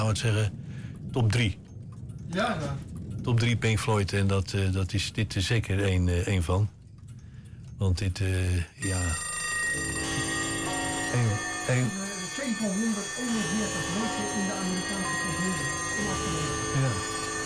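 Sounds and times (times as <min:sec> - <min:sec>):
speech: 0:00.0 - 0:01.6, 0:02.3 - 0:06.8, 0:07.8 - 0:10.3, 0:11.1 - 0:17.2
many clocks ringing and chiming in a rock album track: 0:08.8 - 0:17.4.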